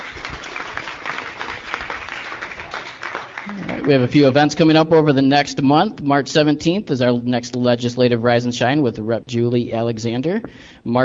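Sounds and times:
crowd at a chamber of commerce gathering applauding: 0.0s - 4.4s
speech: 3.5s - 11.0s.

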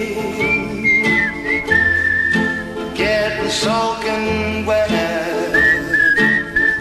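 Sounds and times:
full band accompaniment: 0.0s - 6.7s
clear bright whistled melody in a pop song: 0.2s - 3.3s, 5.3s - 6.7s.

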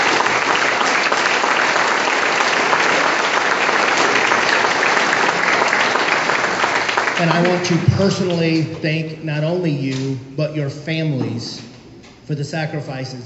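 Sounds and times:
large audience applause for veterans: 0.0s - 8.0s
speech: 7.2s - 11.7s, 12.3s - 13.2s.

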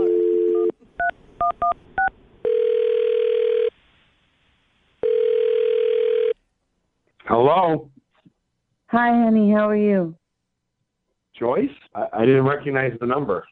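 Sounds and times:
telephone dial tone: 0.0s - 0.8s, 2.4s - 3.7s, 5.0s - 6.4s
speech: 7.5s - 7.9s, 8.9s - 10.2s, 11.4s - 13.5s.

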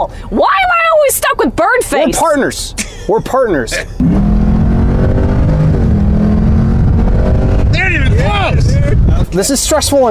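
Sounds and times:
speech: 0.1s - 0.6s, 1.5s - 4.4s, 8.4s - 10.1s
car peeling away at speed with engine roaring at high revs: 4.0s - 10.0s.

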